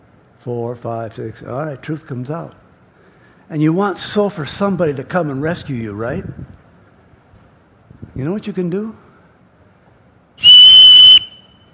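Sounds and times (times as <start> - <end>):
speech: 0.4 - 2.6, 3.5 - 6.4, 8.2 - 9.0
loud sharp whistle blast: 10.4 - 11.7.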